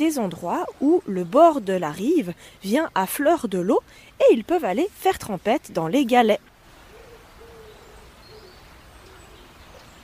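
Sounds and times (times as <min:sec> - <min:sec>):
speech: 0:00.0 - 0:06.5
steady outdoor hiss: 0:00.0 - 0:10.0
common wood pigeon cooing: 0:06.8 - 0:10.0.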